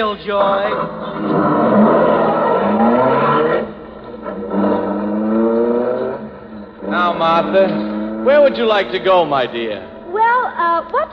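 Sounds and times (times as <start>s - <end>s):
speech: 0.0s - 2.1s, 7.2s - 11.1s
car engine running and revving: 0.0s - 11.1s.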